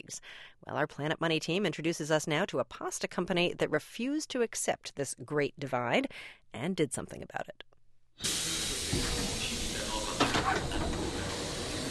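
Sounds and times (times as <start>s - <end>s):
speech: 0.1s - 9.1s
train door sliding open with pneumatic hiss: 8.2s - 11.8s
train door clunk and rattle: 10.1s - 11.7s.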